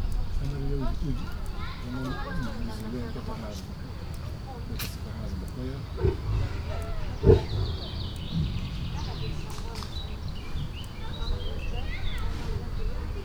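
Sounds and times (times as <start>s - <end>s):
Siberian tiger snorting very softly in Veszprém Zoo: 0.2s - 13.2s.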